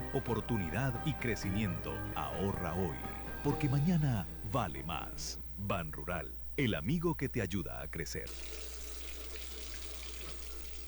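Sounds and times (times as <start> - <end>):
speech: 0.1 - 8.7
water running from an open tap: 8.3 - 10.8.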